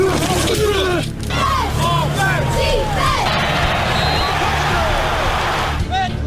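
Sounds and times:
shouts and yells from a football crowd: 0.1 - 6.2
football crowd cheering: 1.3 - 5.9.

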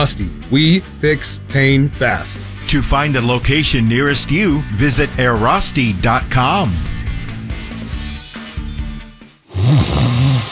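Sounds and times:
speech: 0.0 - 6.9, 9.6 - 10.4
person snoring: 9.5 - 10.4.

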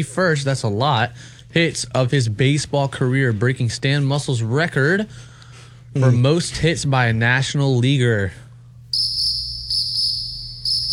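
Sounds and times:
speech: 0.0 - 5.3, 6.0 - 9.1
low hum: 0.0 - 10.9
crickets chirping from a sound effect button: 9.0 - 10.9.

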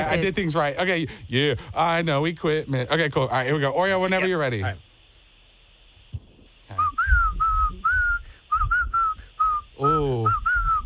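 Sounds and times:
speech: 0.1 - 4.9
person whistling a tune: 6.7 - 10.8.

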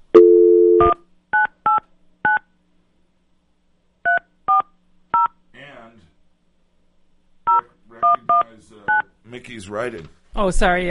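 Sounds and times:
telephone dial tone: 0.2 - 1.0
telephone keypad touch-tone beeps: 0.2 - 2.4, 4.1 - 5.3
speech: 8.6 - 10.9.

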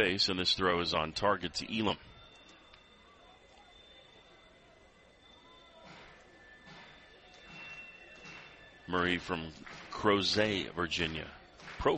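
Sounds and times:
speech: 0.0 - 2.1, 8.9 - 11.9
southbound train rolling slowly along the tracks: 0.0 - 11.9
train clanks: 5.7 - 11.9.

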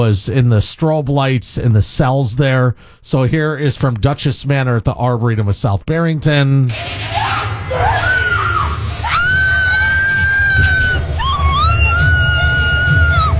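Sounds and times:
speech: 0.0 - 8.2
murmur of noise: 6.7 - 13.3
woman screaming in a haunted house attraction: 7.1 - 13.3.

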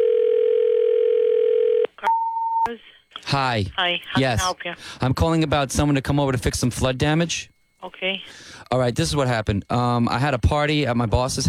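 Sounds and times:
telephone dial tone: 0.0 - 2.7
speech: 2.7 - 11.4.

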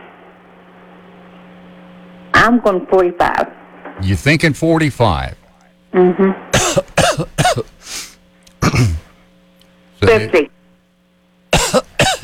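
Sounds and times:
speech: 2.4 - 5.7, 10.0 - 10.5
person coughing: 6.6 - 9.1, 11.5 - 12.2.

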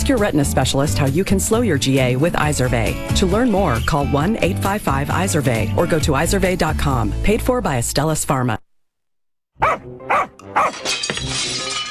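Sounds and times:
speech: 0.1 - 8.6, 10.5 - 11.8
dog barking: 9.6 - 10.8
front window glass breaking: 10.7 - 11.8.

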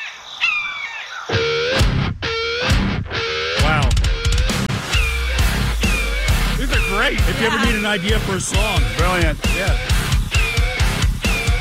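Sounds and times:
hawk calling with harsh raspy cries: 0.0 - 11.5
laughter: 6.6 - 9.6
speech: 7.1 - 9.9.

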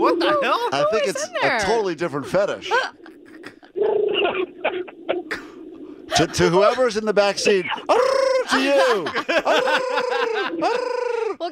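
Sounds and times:
woman imitating pigeon coos: 0.0 - 0.8, 2.7 - 5.3, 7.8 - 8.8, 10.0 - 11.5
speech: 0.0 - 3.0, 6.2 - 11.5
laughter: 2.7 - 5.2, 6.1 - 11.4.

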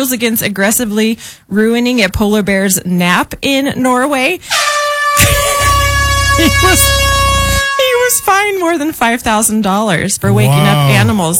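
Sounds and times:
speech: 0.0 - 5.4, 6.4 - 7.1, 8.3 - 11.3
air horn blast: 4.5 - 8.8.

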